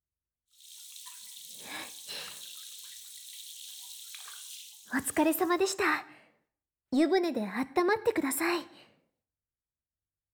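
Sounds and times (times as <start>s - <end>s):
water running while rinsing conditioner from hair: 0.5s - 5.9s
speech: 4.9s - 6.2s, 6.9s - 8.9s.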